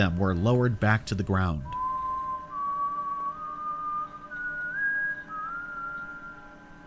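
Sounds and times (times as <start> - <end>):
speech: 0.0 - 1.8
person whistling a signal: 1.6 - 6.8.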